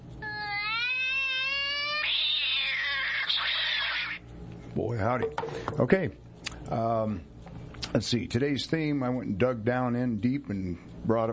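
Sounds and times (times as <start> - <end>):
cat meowing and yowling: 0.2 - 4.2
speech: 4.8 - 7.3, 7.9 - 11.3.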